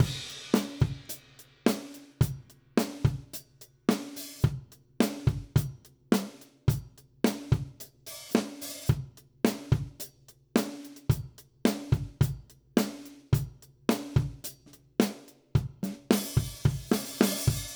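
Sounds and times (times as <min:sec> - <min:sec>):
country music drums: 0:00.0 - 0:17.7.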